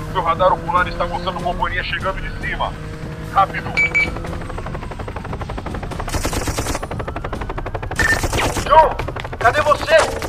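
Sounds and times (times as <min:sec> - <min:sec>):
speech: 0:00.2 - 0:04.4
rapid automatic gunfire in a shooter video game: 0:05.6 - 0:07.2, 0:07.8 - 0:10.2.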